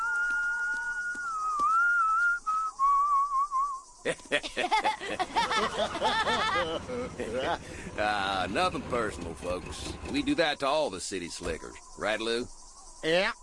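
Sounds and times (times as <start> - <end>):
whistled Western tune of the kind played before a shootout: 0.0 - 4.0
speech: 4.0 - 13.4
laughter: 4.1 - 9.0.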